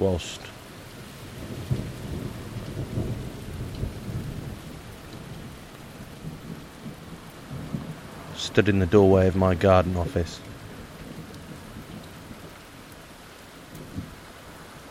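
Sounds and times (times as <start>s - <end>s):
speech: 0.0s - 0.5s, 8.6s - 10.5s
soft hiss of rain: 0.0s - 14.9s
rolling thunder heard from the doorway of a garden office: 1.0s - 12.6s.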